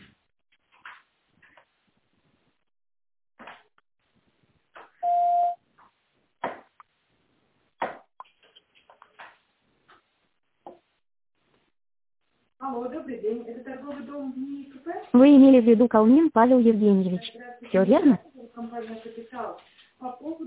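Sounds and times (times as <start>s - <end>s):
automated telephone system beep tone: 5.0s - 5.6s
speech: 12.7s - 20.4s.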